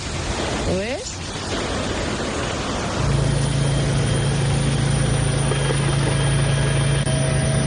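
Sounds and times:
heavy rain: 0:00.0 - 0:07.6
loud constant low engine-like drone: 0:02.8 - 0:07.6.

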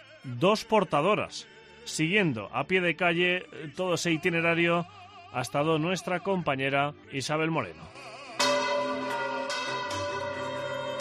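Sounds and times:
speech: 0:00.2 - 0:08.2
church bells striking noon in Valencia: 0:08.4 - 0:10.9.

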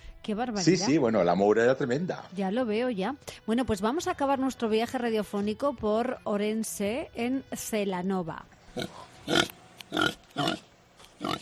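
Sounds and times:
speech: 0:00.2 - 0:11.4
piglets grunting and oinking: 0:08.8 - 0:11.4.

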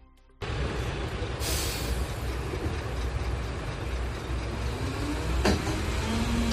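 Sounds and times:
reinforcement garbage collection truck heavy engine droning in A Coruña: 0:00.4 - 0:06.5
garbage collection truck air brakes hissing: 0:01.3 - 0:02.6.

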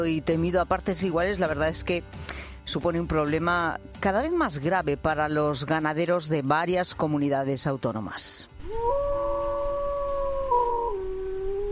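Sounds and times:
speech: 0:00.0 - 0:09.0
Iberian wolf howling: 0:08.6 - 0:11.7.

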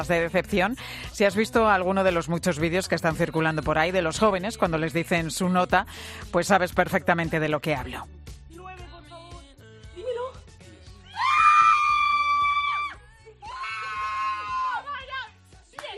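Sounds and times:
speech: 0:00.0 - 0:08.2
girl and her mother shrieking with joy: 0:11.1 - 0:14.9.

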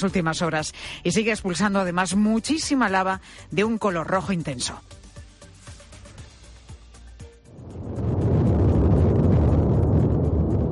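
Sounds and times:
speech: 0:00.0 - 0:05.0
Cumbre Vieja volcano roaring while erupting: 0:07.5 - 0:10.7.

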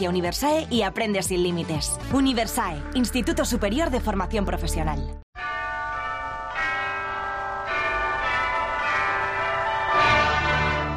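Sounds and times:
speech: 0:00.0 - 0:05.2
church bells ringing: 0:05.4 - 0:10.9.

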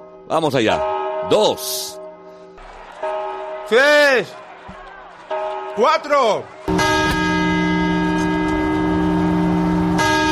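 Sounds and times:
large clock bell chiming at midnight on New Year's Eve: 0:00.0 - 0:03.8, 0:06.7 - 0:10.2
speech: 0:00.3 - 0:02.0, 0:03.7 - 0:04.4, 0:05.8 - 0:06.9.

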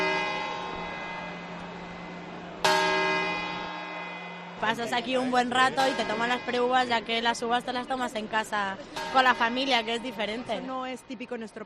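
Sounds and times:
large church clock bell striking midnight: 0:00.0 - 0:07.6, 0:08.9 - 0:10.6
speech: 0:04.6 - 0:11.6.

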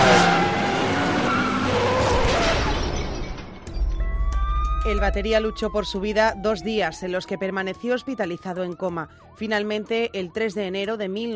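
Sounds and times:
car tires screeching in a long skid: 0:00.0 - 0:04.0
low heavy crash of a car collision: 0:01.6 - 0:04.8
speech: 0:05.0 - 0:11.3.

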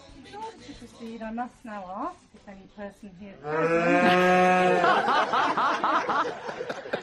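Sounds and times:
very large greyish cow mooing loudly in an adjoining farm field: 0:03.4 - 0:04.8
wedding guests laughing: 0:03.9 - 0:07.0.

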